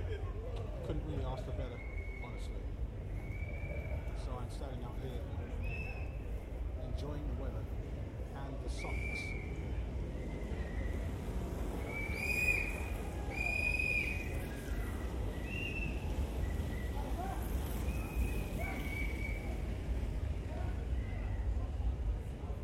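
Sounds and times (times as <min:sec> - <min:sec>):
outdoor crowd murmur: 0:00.0 - 0:22.6
speech: 0:00.9 - 0:02.9, 0:04.2 - 0:05.7, 0:07.0 - 0:09.6
shrill whistle blasts blown by passers-by: 0:01.7 - 0:04.1, 0:05.6 - 0:06.3, 0:08.8 - 0:11.1, 0:11.8 - 0:17.1, 0:17.7 - 0:19.7.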